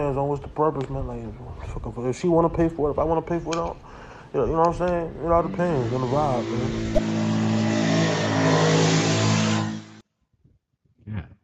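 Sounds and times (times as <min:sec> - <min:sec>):
speech: 0:00.0 - 0:07.1
motorbike engine revving as it rides past in a quiet neighborhood at night: 0:05.0 - 0:10.0.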